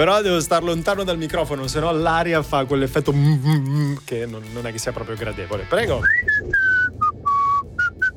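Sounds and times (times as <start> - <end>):
speech: 0.0 - 7.0
person whistling a song melody: 5.9 - 8.1.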